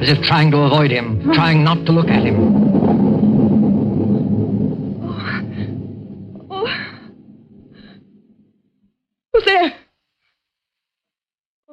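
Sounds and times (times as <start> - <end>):
speech: 0.0 - 2.8
deep rolling rumble of thunder: 0.0 - 8.9.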